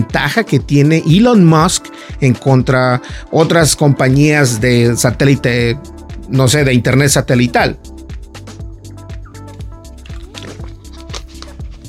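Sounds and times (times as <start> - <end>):
speech: 0.1 - 8.0
person swallowing water: 9.3 - 11.8.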